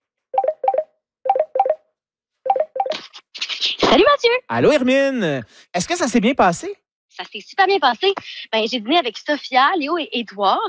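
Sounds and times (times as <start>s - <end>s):
telephone keypad dialing tones: 0.4s - 1.8s
speech: 4.2s - 10.6s.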